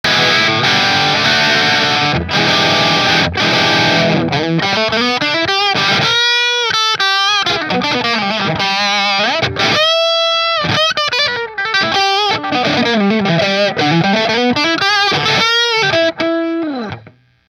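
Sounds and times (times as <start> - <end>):
electric guitars through a Marshall amplifier on the bridge pickup: 0.0 - 17.4.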